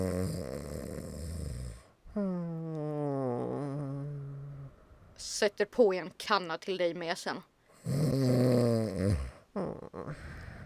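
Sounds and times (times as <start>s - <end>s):
person snoring: 0.0s - 4.8s, 7.8s - 10.6s
speech: 5.4s - 8.4s.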